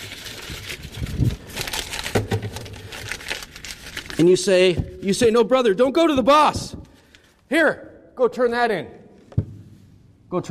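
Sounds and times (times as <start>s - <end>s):
paper being folded into a paper airplane: 0.0s - 5.8s
speech: 4.2s - 6.6s, 7.5s - 9.0s.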